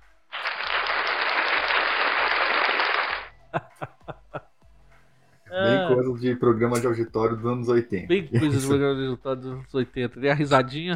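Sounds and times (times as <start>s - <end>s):
dense crowd applause: 0.3s - 3.3s
isolated sharp claps or hits: 0.4s - 4.2s
laughter: 3.4s - 4.5s, 8.2s - 8.9s
speech: 5.9s - 10.9s.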